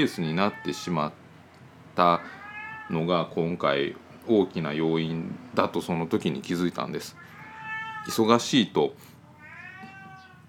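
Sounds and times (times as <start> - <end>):
cat meowing: 0.0 - 1.0, 2.2 - 3.4, 7.0 - 8.3, 9.2 - 10.4
speech: 0.0 - 1.2, 2.0 - 7.3, 8.0 - 9.1.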